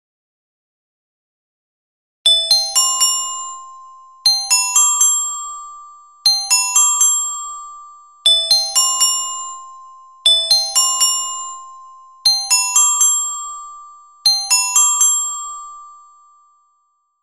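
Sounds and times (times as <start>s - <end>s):
contralto carillon bells: 2.4s - 16.2s.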